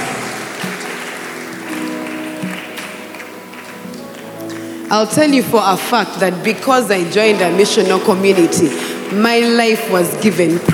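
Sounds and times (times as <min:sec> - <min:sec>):
crowd applause: 0:00.0 - 0:05.2
speech: 0:04.9 - 0:10.7.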